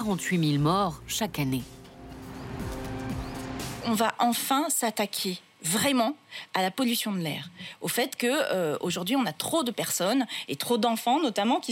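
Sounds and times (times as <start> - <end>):
speech: 0.0 - 1.8, 3.9 - 11.7
steady street traffic with car engines humming: 1.7 - 3.9
cars passing by in the street: 1.9 - 3.8.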